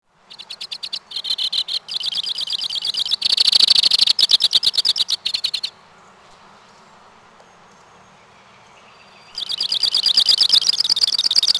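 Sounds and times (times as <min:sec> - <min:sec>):
white-winged crossbill rattling trills: 0:00.3 - 0:05.7, 0:09.4 - 0:11.5.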